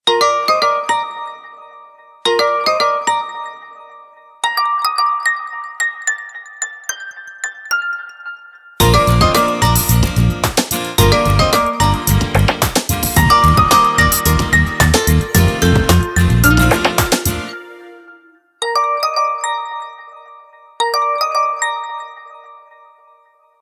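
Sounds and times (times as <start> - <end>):
OnePlus 11 phone ringtone: 0.1 - 10.2, 11.0 - 23.5.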